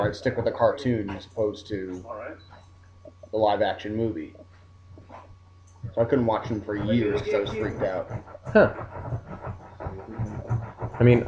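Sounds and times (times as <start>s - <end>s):
speech: 0.0s - 2.5s, 3.3s - 4.4s, 5.8s - 10.2s, 11.0s - 11.2s
dog panting: 5.8s - 11.2s.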